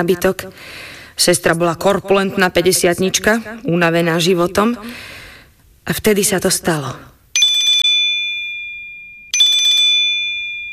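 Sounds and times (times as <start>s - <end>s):
speech: 0.0s - 5.2s, 5.8s - 7.1s
mobile phone ringing: 7.4s - 10.7s.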